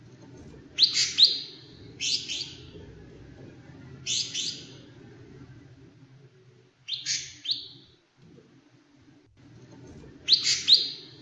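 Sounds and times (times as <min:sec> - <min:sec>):
leafbird singing: 0:00.8 - 0:02.7, 0:04.0 - 0:04.8, 0:06.9 - 0:07.8, 0:10.3 - 0:11.2.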